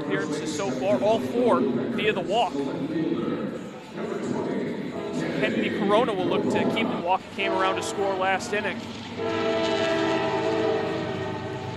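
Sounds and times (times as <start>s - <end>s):
speech: 0.1s - 9.9s
train rumbling past behind a baseball stadium: 6.1s - 11.7s
Amtrak train horn blaring: 7.2s - 8.5s, 9.2s - 11.7s.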